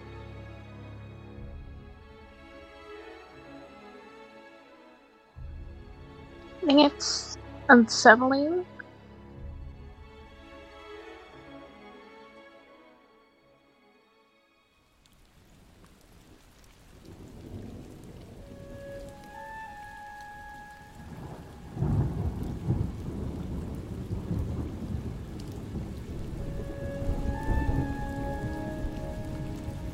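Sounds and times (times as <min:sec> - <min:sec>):
steady thunderstorm rain: 0:05.4 - 0:08.3, 0:14.8 - 0:29.9
speech: 0:06.6 - 0:08.7
deep rolling thunder rumbles: 0:16.9 - 0:19.6, 0:20.9 - 0:29.9.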